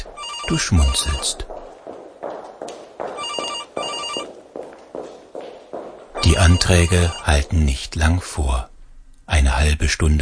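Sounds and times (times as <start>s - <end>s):
telephone ringing with bright warbling tones: 0.0s - 1.4s, 3.2s - 4.3s, 6.2s - 7.5s
hard footsteps echoing in a hallway: 0.0s - 8.4s
speech: 0.5s - 1.5s, 6.3s - 8.7s, 9.3s - 10.2s.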